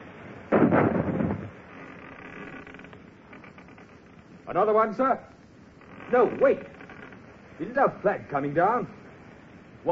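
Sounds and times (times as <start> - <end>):
cannon shot fired from a sailing warship: 0.5 - 1.6
speech: 4.5 - 5.4, 6.1 - 6.8, 7.6 - 9.0.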